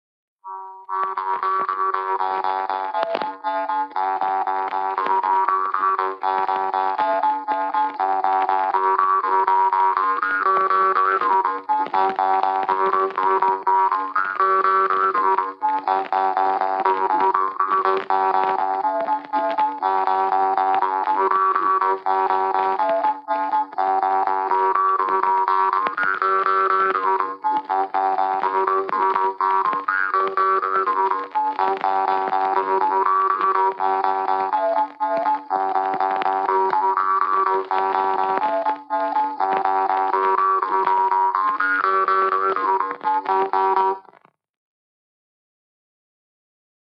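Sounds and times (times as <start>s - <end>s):
polka folk tune on a bagpipe: 0.4s - 44.4s.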